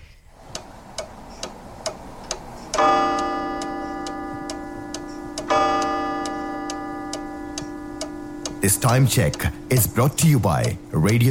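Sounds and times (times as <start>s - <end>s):
radio studio clock ticking: 0.4s - 11.2s
person talking: 8.6s - 11.2s.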